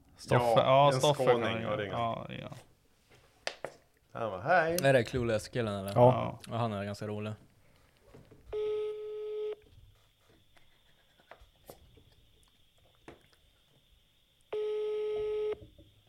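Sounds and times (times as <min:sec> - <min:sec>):
faint noise: 0:00.0 - 0:16.0
speech: 0:00.2 - 0:02.7, 0:04.2 - 0:07.4
phone ringback tone while waiting for an answer: 0:08.6 - 0:09.6, 0:14.5 - 0:15.6.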